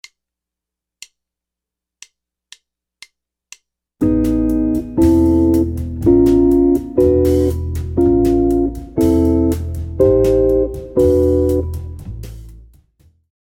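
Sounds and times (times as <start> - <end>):
jazz guitar chords: 4.0 - 12.7.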